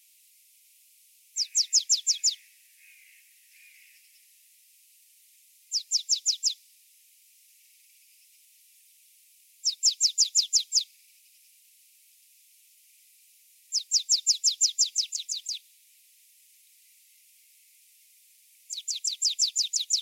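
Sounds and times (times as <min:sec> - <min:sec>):
marsh tit Poecile palustris calling in bursts of quick high notes: 0:01.4 - 0:04.2, 0:05.7 - 0:06.6, 0:09.6 - 0:10.9, 0:13.7 - 0:15.6, 0:18.7 - 0:20.0.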